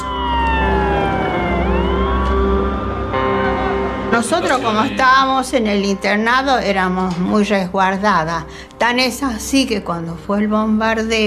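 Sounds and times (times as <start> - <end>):
ambulance siren wailing at the Plaza de Mayo in Argentina: 0.0 - 5.2
speech: 4.2 - 11.2.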